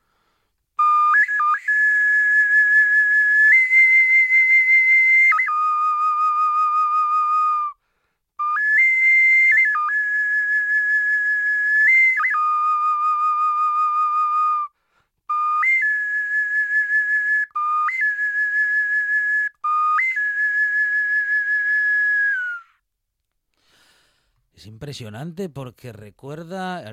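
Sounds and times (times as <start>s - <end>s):
ancient Maya whistle playing a melody: 0.8s - 7.8s, 8.4s - 14.7s, 15.3s - 22.8s
speech: 24.6s - 26.9s.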